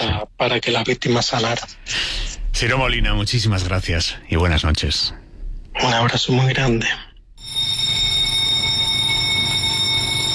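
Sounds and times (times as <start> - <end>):
speech: 0.1 - 5.2, 5.8 - 8.0
newsroom electronic alarm buzzing: 7.4 - 10.3.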